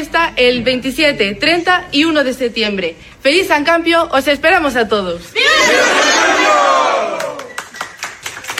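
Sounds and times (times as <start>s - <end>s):
speech: 0.0s - 6.1s
crowd bellowing a loud sustained battle cry: 5.4s - 7.4s.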